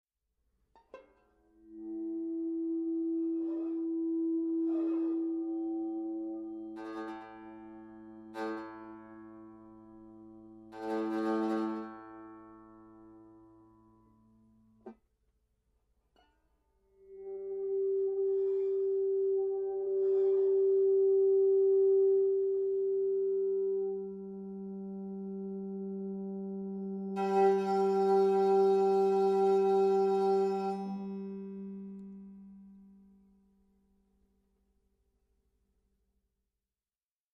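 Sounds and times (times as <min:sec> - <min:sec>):
banjo played with an e-bow: 0:00.8 - 0:15.0, 0:17.0 - 0:33.2.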